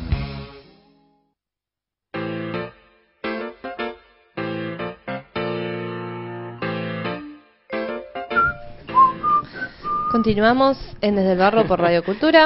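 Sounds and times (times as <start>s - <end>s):
instrumental music: 2.2s - 10.3s
person whistling a bright melody: 8.3s - 10.4s
speech: 10.1s - 12.4s.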